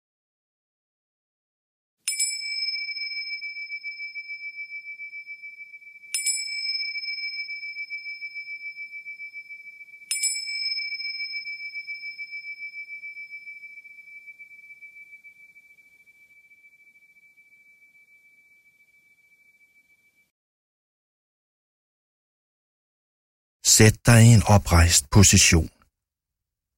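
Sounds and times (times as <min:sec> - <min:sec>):
meditation bell struck to begin a meditation exercise: 0:02.1 - 0:20.3
speech: 0:23.8 - 0:25.8.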